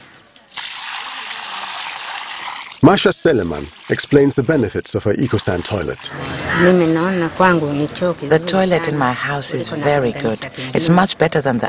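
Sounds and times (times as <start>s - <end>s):
urine mixed with water poured onto the ground around a plant's base: 0.5s - 6.1s
speech: 2.8s - 11.6s.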